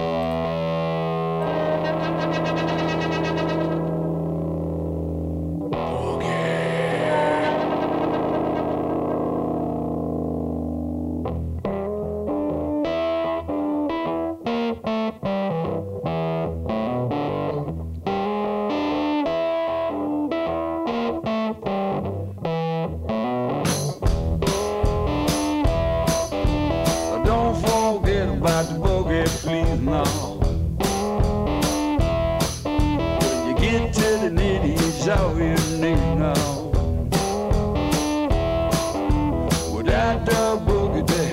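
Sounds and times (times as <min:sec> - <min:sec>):
boogie blues tune with loud distorted effects-heavy guitar: 0:00.0 - 0:41.3.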